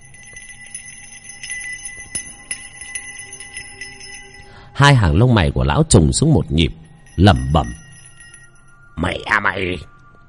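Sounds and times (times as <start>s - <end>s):
hand bell being shaken: 0.0s - 4.6s, 6.8s - 8.7s
speech: 4.8s - 7.8s, 9.0s - 9.9s.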